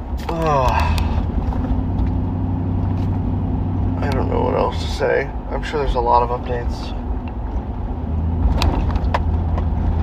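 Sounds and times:
car driving through town with deep steady engine and road rumble: 0.0 - 10.0
speech: 0.2 - 1.0, 5.0 - 7.0.

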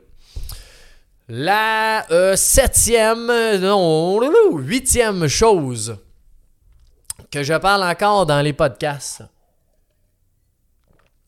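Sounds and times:
person sipping a drink: 0.4 - 0.8
speech: 1.3 - 6.0, 7.3 - 9.3.

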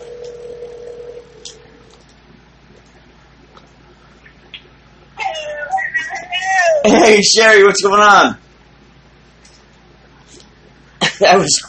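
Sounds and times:
warbling ringtone-like melody of incoming phone call: 0.0 - 1.4
steady electronic phone tone: 0.0 - 1.8
speech: 6.8 - 8.4, 11.3 - 11.6.

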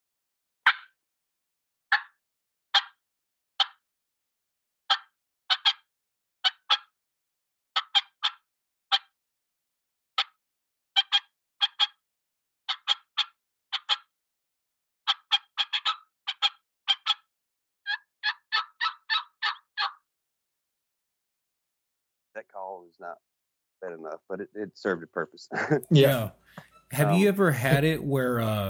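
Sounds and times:
person imitating turkey yelps on a mouth call: 0.7 - 0.9, 1.9 - 2.1, 2.8 - 3.0, 3.6 - 3.8, 4.9 - 5.8, 6.4 - 6.9, 7.8 - 9.1, 11.0 - 12.0, 12.7 - 14.1, 15.1 - 17.3, 17.9 - 20.0
speech: 22.4 - 28.6
laughter: 23.9 - 26.3, 26.9 - 28.6.

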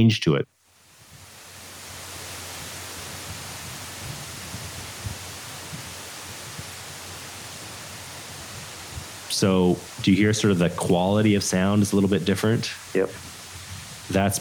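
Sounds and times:
speech: 0.0 - 0.6, 9.4 - 13.3, 14.1 - 14.4
warm mid-Pacific rainstorm pelting the ocean surface heard deep underwater in the Philippine Sea: 0.7 - 14.4.

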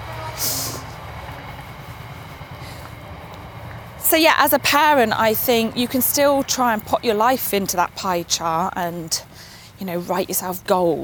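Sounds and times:
freight train passing: 0.0 - 11.0
loud hiss: 0.3 - 1.0
speech: 4.1 - 11.0.

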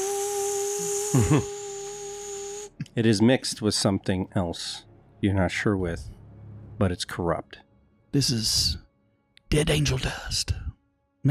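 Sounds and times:
small handheld vacuum cleaner running with high-pitched motor whine: 0.0 - 2.7
speech: 1.1 - 1.6, 3.0 - 6.2, 6.8 - 8.8, 9.5 - 10.6.

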